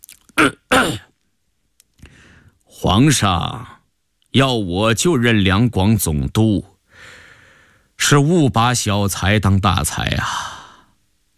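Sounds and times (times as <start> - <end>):
man clearing his throat: 0.4 - 1.1
speech: 2.8 - 3.8, 4.4 - 7.2, 8.0 - 10.5.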